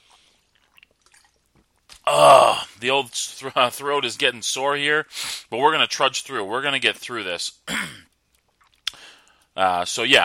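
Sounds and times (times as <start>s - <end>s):
person sipping water from a glass: 0.0s - 2.1s
small drips: 0.0s - 2.1s, 8.0s - 9.6s
speech: 2.1s - 8.0s, 9.6s - 10.2s.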